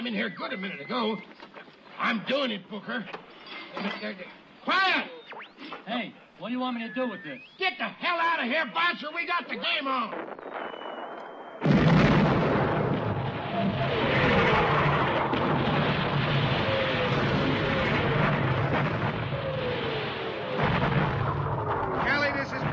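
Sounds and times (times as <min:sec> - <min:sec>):
speech: 0:00.0 - 0:01.4, 0:02.0 - 0:10.5
artillery fire on a battlefield near a damaged bridge: 0:10.1 - 0:22.7.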